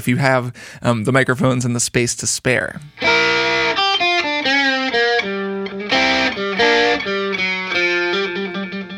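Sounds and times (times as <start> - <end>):
speech: 0.0 - 3.7
distorted electric guitar played through an amp: 2.9 - 8.9.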